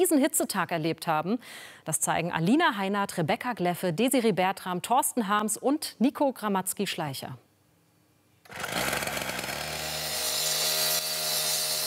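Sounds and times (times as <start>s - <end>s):
speech: 0.0s - 7.4s, 8.5s - 8.9s
power tool at a construction site for tram line extension: 8.5s - 11.8s.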